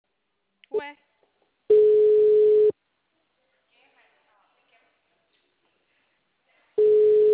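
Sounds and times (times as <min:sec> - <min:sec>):
speech: 0:00.7 - 0:01.0
ringing tone of an outgoing telephone call: 0:01.7 - 0:02.7, 0:06.8 - 0:07.3.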